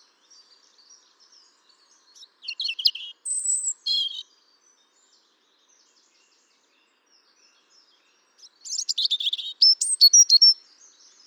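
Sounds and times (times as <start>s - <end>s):
European robin Erithacus rubecula song: 1.5s - 4.3s, 8.4s - 10.6s.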